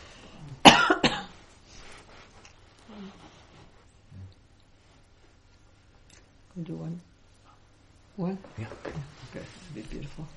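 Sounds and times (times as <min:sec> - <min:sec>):
soft noise: 0:00.0 - 0:10.3
person coughing sharply: 0:00.6 - 0:01.4
speech: 0:06.6 - 0:07.1, 0:08.2 - 0:10.3.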